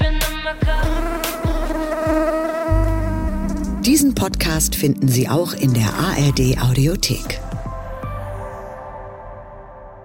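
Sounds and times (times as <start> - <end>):
mosquito buzzing: 0.6 - 4.8
low rumbling hum: 2.7 - 6.7
speech: 3.9 - 7.5.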